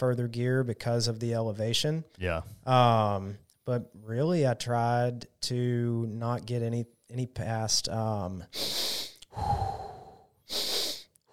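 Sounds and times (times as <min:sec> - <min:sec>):
speech: 0:00.0 - 0:09.6
double-inhale power breathing: 0:08.5 - 0:11.3.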